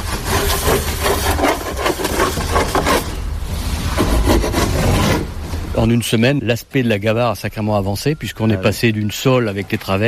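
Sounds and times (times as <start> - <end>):
hand saw cutting through a wooden boat side planking board: 0.0 - 3.2, 3.9 - 5.3
speech: 5.8 - 10.0.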